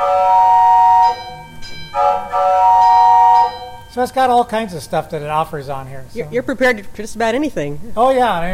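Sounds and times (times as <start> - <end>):
railroad crossing bell clanging as a train approaches: 0.0 - 5.5
speech: 4.0 - 8.5.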